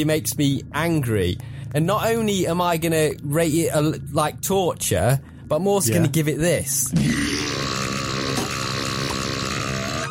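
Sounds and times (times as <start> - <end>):
speech: 0.0 - 7.6
long loud rumbling burp: 6.9 - 10.0.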